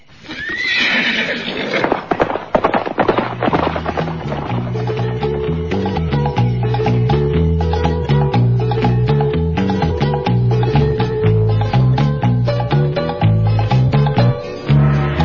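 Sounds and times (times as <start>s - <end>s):
horse neighing: 0.2s - 2.0s
hooves clip-clopping: 1.5s - 5.9s
musical tones: 4.5s - 15.2s.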